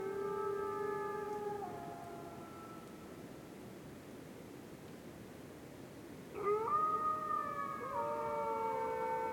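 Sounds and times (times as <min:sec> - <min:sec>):
wolves howling in a winter forest at night: 0:00.0 - 0:02.9, 0:06.4 - 0:09.3.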